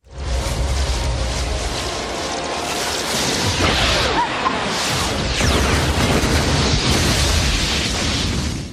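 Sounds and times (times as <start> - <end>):
crackling debris of a destroyed skyscraper: 0.0 - 8.7
cinematic explosion of a skyscraper in Manhattan destroyed by a blast: 2.8 - 8.7.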